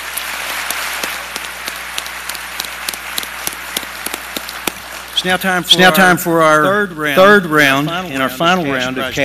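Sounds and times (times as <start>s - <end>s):
audience applauding: 0.0s - 6.6s
speech: 5.2s - 9.2s.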